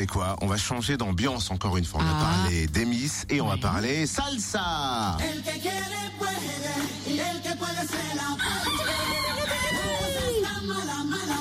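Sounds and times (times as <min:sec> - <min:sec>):
speech: 0:00.0 - 0:08.8
rooster crowing: 0:08.4 - 0:10.5.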